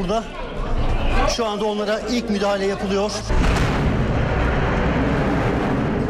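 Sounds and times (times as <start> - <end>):
speech: 0.0 - 0.5, 1.2 - 3.6
heavy bomb blast roaring boom: 3.3 - 6.0.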